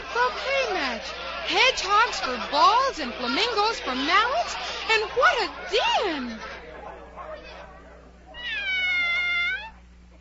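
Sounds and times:
laughter: 0.0s - 7.7s
soft voice-like murmur: 0.0s - 10.1s
speech: 0.3s - 6.5s
cat meowing: 8.3s - 10.1s.

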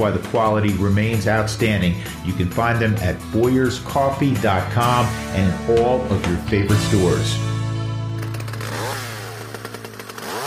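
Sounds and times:
speech: 0.0s - 7.5s
small gas-powered Stihl tool engine idling and revving: 8.1s - 10.4s.

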